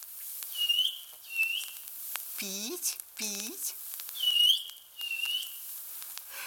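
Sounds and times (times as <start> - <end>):
small grey rain bird peeping behind a dense spruce thicket: 0.5 - 1.9, 4.1 - 5.7
speech: 2.4 - 3.8.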